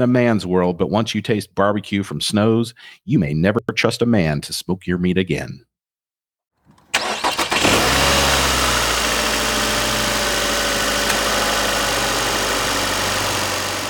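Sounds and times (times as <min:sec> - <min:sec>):
speech: 0:00.0 - 0:05.7
car engine starting: 0:06.7 - 0:13.8.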